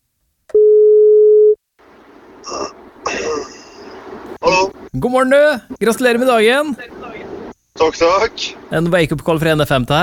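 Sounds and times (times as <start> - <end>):
steady electronic telephone ringing tone: 0.5 - 1.6
speech: 4.9 - 6.9, 7.8 - 10.0.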